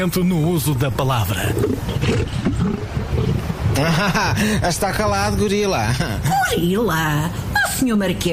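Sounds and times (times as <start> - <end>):
speech: 0.0 - 3.0, 3.8 - 8.3
lion roaring in a deep continuous rumbling growl: 1.4 - 3.8.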